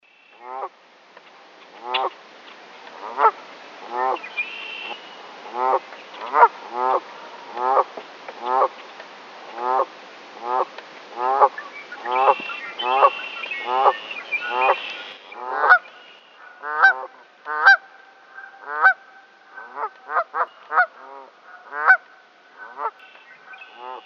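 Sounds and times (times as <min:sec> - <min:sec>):
Canada Goose: 0:00.4 - 0:00.7, 0:01.7 - 0:02.2, 0:03.0 - 0:08.7, 0:09.5 - 0:15.8, 0:19.6 - 0:22.0, 0:22.6 - 0:23.0, 0:23.6 - 0:24.0.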